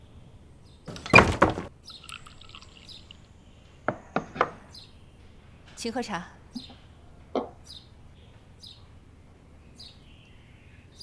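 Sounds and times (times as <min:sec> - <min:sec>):
door shut with a heavy broad thump: 0:00.9 - 0:01.7
speech: 0:05.8 - 0:06.4.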